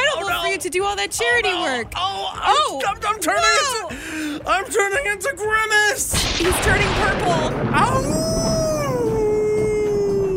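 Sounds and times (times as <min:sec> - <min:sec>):
speech: 0:00.6 - 0:08.4
person imitating a howl: 0:08.2 - 0:10.3.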